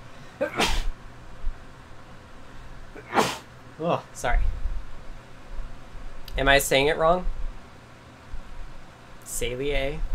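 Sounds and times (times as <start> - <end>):
single sharp sneeze: 0.4 - 0.9, 3.0 - 3.5
speech: 3.8 - 4.6, 6.4 - 7.4, 9.4 - 10.1.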